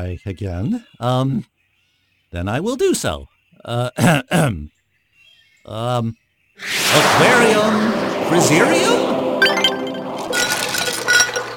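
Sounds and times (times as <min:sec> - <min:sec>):
speech: 0:00.0 - 0:01.5, 0:02.3 - 0:04.8, 0:05.6 - 0:09.2
ice cubes clinking: 0:09.4 - 0:11.5.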